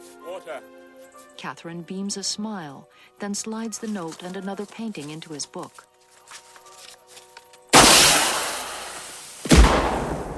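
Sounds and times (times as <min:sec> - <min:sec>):
speech: 0:00.4 - 0:06.4
flare gun firing a red flare at night: 0:07.7 - 0:10.3.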